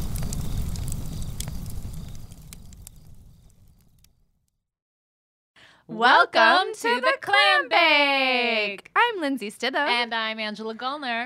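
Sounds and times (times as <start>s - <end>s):
campfire crackling: 0.0s - 4.3s
speech: 5.9s - 11.2s.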